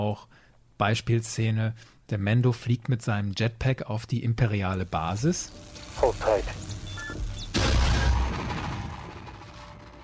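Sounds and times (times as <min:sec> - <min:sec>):
speech: 0:00.0 - 0:06.8
short high whine: 0:04.9 - 0:08.5
explosive blast roaring as a dense rumble: 0:05.9 - 0:10.0.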